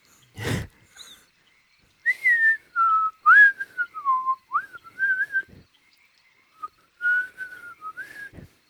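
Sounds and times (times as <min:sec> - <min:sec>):
person whistling a wavering melody: 0:02.1 - 0:05.5, 0:07.0 - 0:08.4.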